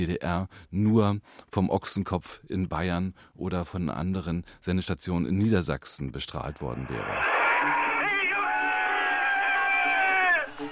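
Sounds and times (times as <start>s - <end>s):
speech: 0.0s - 7.9s
large crowd cheering with whoops and high shouts: 6.5s - 10.6s.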